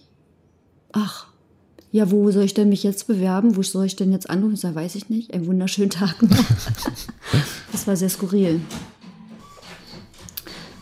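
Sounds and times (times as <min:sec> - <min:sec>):
speech: 0:00.9 - 0:01.3, 0:01.9 - 0:08.9
laughter: 0:06.2 - 0:07.7
printer printing with paper feeding through: 0:06.5 - 0:10.8.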